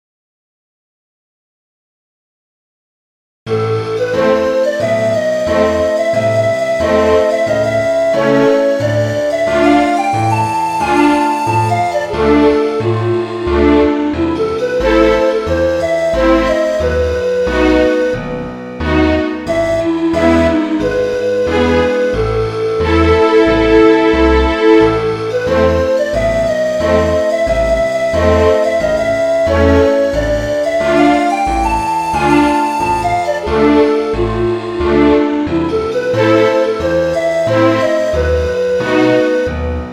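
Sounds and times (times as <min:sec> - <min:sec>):
orchestra: 0:03.5 - 0:39.9.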